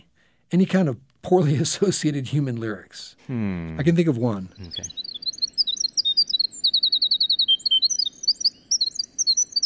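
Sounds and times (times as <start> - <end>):
speech: 0.5 - 5.0
Winter Wren singing: 3.7 - 9.6.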